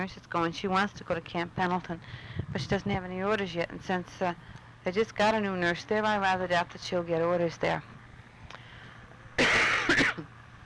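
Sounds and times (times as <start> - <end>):
speech: 0.0 - 8.6
harsh rasping cough: 9.4 - 10.3.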